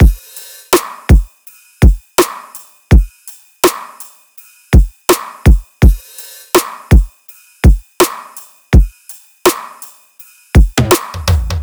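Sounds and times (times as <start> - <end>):
full future bass drum loop: 0.0 - 4.1, 4.8 - 8.9, 10.6 - 11.6.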